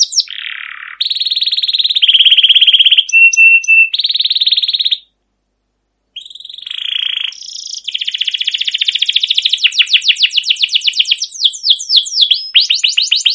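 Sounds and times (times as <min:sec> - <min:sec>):
canary singing a long rolling song with cuit-cuit notes: 0:00.0 - 0:05.2, 0:06.2 - 0:13.3.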